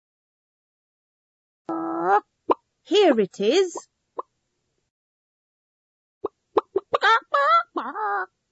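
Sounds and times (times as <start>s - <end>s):
speech: 2.1s - 3.9s, 7.0s - 8.4s
chicken clucking and cackling: 6.2s - 8.0s.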